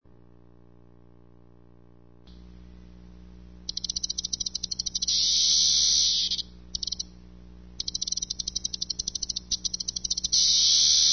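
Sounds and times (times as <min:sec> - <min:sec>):
cicada song of ticking clicks and high buzz: 0:03.7 - 0:07.1, 0:07.8 - 0:11.1.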